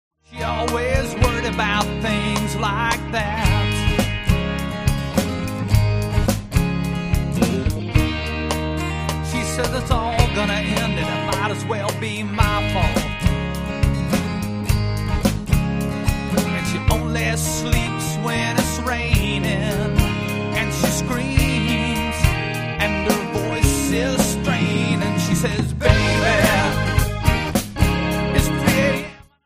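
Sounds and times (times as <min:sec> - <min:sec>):
rock pop and blues play-along drums: 0:00.6 - 0:29.1.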